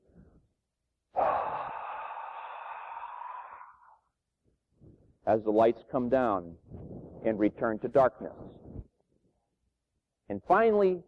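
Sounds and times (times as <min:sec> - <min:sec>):
long breathy exhalation: 0:01.1 - 0:04.1
speech: 0:05.3 - 0:08.6, 0:10.3 - 0:11.0.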